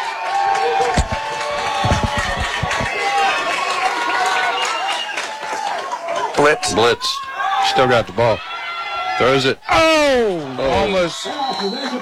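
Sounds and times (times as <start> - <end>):
football stadium crowd cheering on a third down: 0.0 - 12.0
dull thumps: 0.8 - 2.9
speech: 6.4 - 8.5, 9.2 - 12.0.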